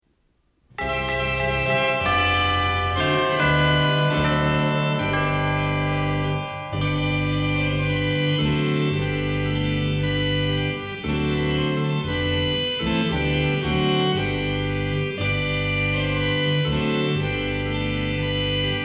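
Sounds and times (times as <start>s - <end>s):
Christmas chimes: 0.8s - 8.8s
Christmas organ music: 0.8s - 18.8s.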